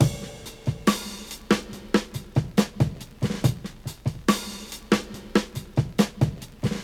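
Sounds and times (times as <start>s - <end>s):
70 bpm drum beat in C: 0.0s - 6.8s.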